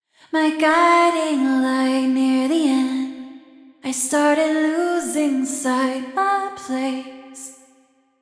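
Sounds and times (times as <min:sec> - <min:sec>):
vocals: 0:00.0 - 0:08.0.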